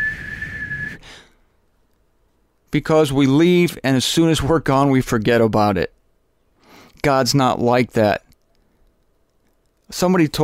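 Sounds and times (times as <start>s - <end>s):
whistling tea kettle: 0.0s - 1.0s
speech: 2.7s - 6.0s, 7.0s - 8.3s, 9.9s - 10.4s.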